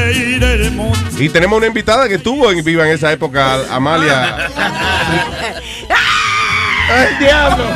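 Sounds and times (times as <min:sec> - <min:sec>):
speech: 0:00.1 - 0:05.3, 0:06.9 - 0:07.7
laughter: 0:03.5 - 0:07.7
woman's loud shrill pig-like squealing scream: 0:05.9 - 0:07.7.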